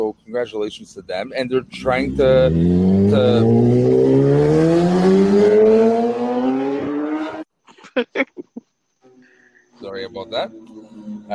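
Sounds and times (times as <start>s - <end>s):
speech: 0.1s - 6.0s, 10.3s - 11.3s
motorcycle passing by loudly: 2.1s - 7.4s.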